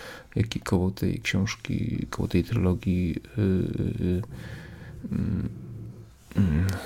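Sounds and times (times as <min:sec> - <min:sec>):
speech: 0:00.4 - 0:05.6, 0:06.4 - 0:06.8
small dog growling softly: 0:04.7 - 0:06.2.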